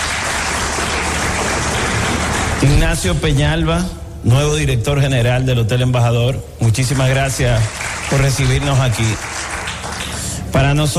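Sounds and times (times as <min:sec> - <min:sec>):
audience applauding at a hotel event in the Dominican Republic: 0:00.0 - 0:03.0, 0:06.8 - 0:10.9
speech: 0:02.6 - 0:09.4, 0:10.5 - 0:10.9.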